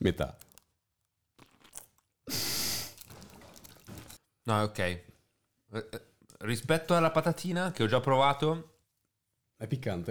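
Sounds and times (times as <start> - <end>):
speech: 0.0 - 0.4, 4.5 - 5.1, 5.7 - 8.7, 9.6 - 10.0
wet crunch of biting into a huge pickled cucumber: 1.4 - 2.1.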